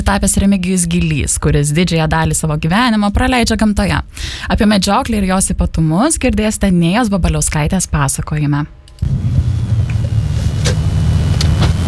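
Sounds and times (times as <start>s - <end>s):
speech: 0.1s - 9.4s
car engine and road noise while driving to hunting grounds: 8.7s - 11.8s.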